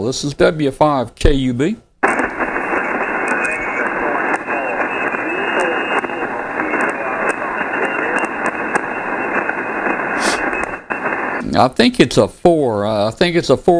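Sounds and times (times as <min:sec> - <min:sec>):
speech: 0:00.0 - 0:01.8, 0:11.6 - 0:13.7
radio static hiss on ham radio receiver: 0:02.0 - 0:11.8
faint unintelligible voice under radio static: 0:02.7 - 0:09.5.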